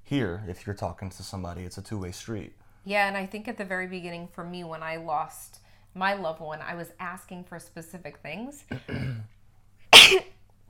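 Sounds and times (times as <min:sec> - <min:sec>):
speech: 0:00.1 - 0:09.4
sneeze: 0:09.9 - 0:10.3.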